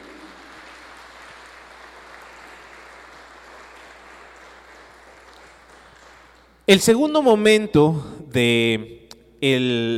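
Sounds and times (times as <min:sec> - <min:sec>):
crowd applauding for the Virgin Mary: 0:00.0 - 0:06.6
speech: 0:06.7 - 0:09.9.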